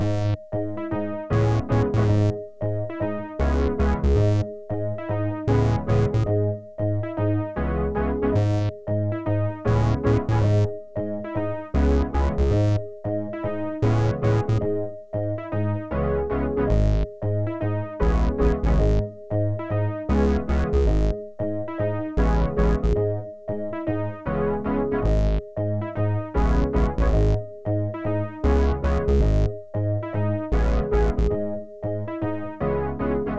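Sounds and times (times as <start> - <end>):
synthesizers including SH101: 0.0 - 33.3.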